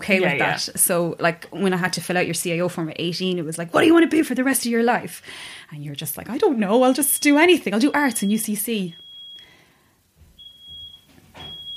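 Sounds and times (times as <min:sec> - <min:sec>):
speech: 0:00.0 - 0:09.0
low noise: 0:00.0 - 0:11.7
smoke alarm beeping: 0:06.8 - 0:11.7.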